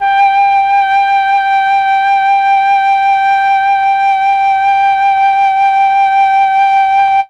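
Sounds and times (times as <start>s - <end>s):
flute: 0.0s - 7.2s.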